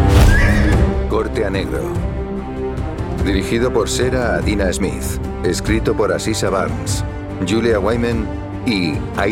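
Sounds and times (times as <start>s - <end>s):
horse neighing as it is spurred: 0.2s - 0.9s
speech: 1.5s - 2.2s, 3.3s - 9.3s.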